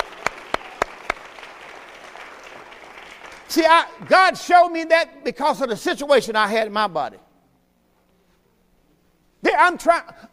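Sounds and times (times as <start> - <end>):
crowd clapping hands in a steady unison rhythm: 0.0 - 4.1
speech: 3.5 - 7.2, 9.6 - 10.3.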